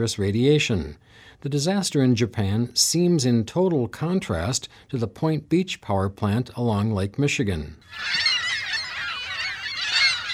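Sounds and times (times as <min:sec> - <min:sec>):
speech: 0:00.0 - 0:08.3
gulls calling in a parking lot on the Lake Michigan shore: 0:07.8 - 0:10.3.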